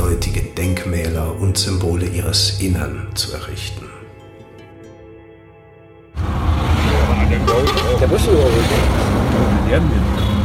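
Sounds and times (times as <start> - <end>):
speech: 1.2 - 3.9, 8.1 - 10.4
busy chaotic traffic roar on a highway: 6.2 - 10.4
deep engine rumble of highway traffic: 6.2 - 10.4.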